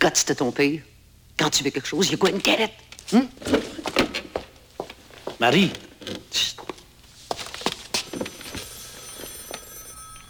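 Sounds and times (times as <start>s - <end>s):
speech: 0.0s - 4.0s, 5.4s - 6.6s
telephone ringing with electronic trill: 7.9s - 10.2s.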